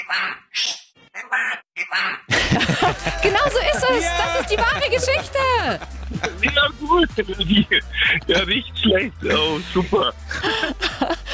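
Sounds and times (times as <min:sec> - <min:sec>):
parrot squawking with harsh raspy calls: 0:00.0 - 0:02.3
speech: 0:00.1 - 0:10.8
laughter: 0:02.3 - 0:11.3.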